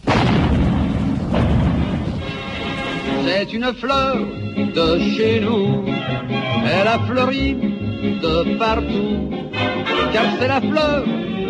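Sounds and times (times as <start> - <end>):
heavy cannon artillery fire: 0.0 - 3.4
speech: 3.3 - 11.4.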